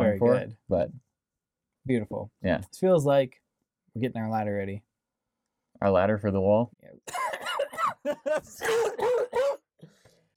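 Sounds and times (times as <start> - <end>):
speech: 1.8 - 3.4, 4.0 - 4.9, 5.8 - 7.4, 8.0 - 10.0
person coughing: 7.1 - 9.7.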